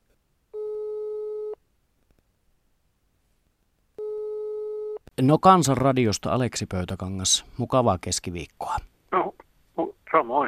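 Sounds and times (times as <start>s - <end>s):
ringback tones of an outgoing phone call: 0.6s - 1.6s, 4.0s - 5.0s
speech: 5.2s - 8.9s, 10.3s - 10.4s.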